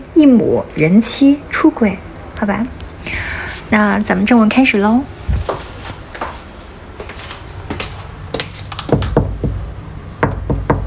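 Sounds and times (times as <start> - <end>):
speech: 0.2 - 5.4
sharp raps knocking on a door: 8.9 - 9.6, 10.2 - 10.8.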